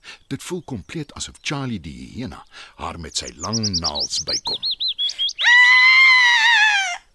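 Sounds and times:
speech: 0.3 - 4.8
girl screaming in fear: 5.3 - 7.1.

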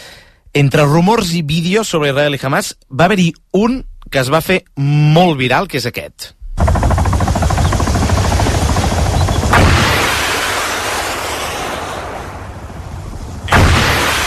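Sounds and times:
speech: 0.6 - 6.9
helicopter rotor thumping: 6.4 - 11.2
rocket launcher explosive blast: 6.4 - 14.2.

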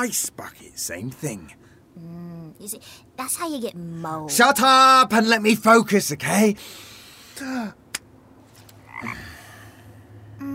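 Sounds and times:
speech: 0.0 - 7.8
frog croaking: 8.8 - 9.6.

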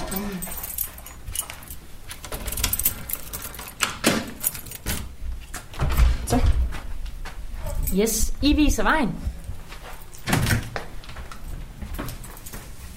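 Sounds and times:
keys jangling while unlocking a school door: 0.0 - 5.2, 9.9 - 10.7, 11.3 - 12.8
low noise: 0.0 - 12.9
speech: 7.9 - 9.3.

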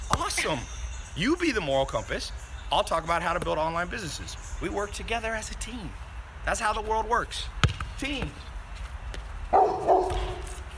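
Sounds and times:
speech: 0.4 - 8.5
dog barking: 9.5 - 10.5.

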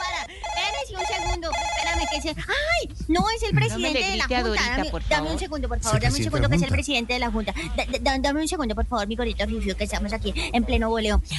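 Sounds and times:
telephone ringing with bright warbling electronic tone: 0.0 - 2.3
speech: 2.1 - 11.3.

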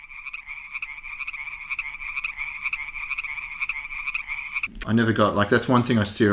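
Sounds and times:
chorus of chirping crickets sound effect: 0.0 - 4.7
speech: 4.8 - 6.3.

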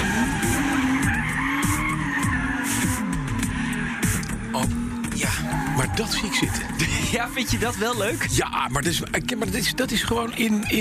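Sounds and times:
tires of a Toyota Supra squealing and skidding while drifting on a circuit: 0.0 - 8.6
Toyota Supra engine revving while drifting: 0.0 - 10.7
speech: 5.8 - 10.7.

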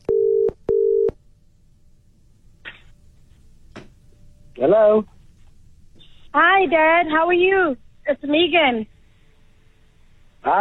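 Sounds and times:
telephone dialing tones, low electronic beeps: 0.0 - 1.2
speech: 4.6 - 5.2, 6.3 - 8.9.

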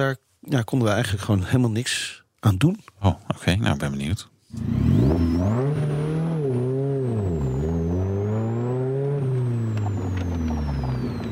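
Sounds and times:
speech: 0.0 - 5.6
Morgan Plus 4 sports car engine revving during testing in the sun: 4.5 - 11.2
faint high whine: 5.0 - 11.2.

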